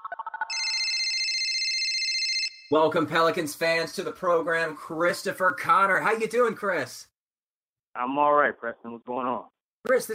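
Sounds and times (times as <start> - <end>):
phone ringtone with electronic blips and warbling trill: 0.5 - 2.7
speech: 2.7 - 7.1, 8.0 - 10.1.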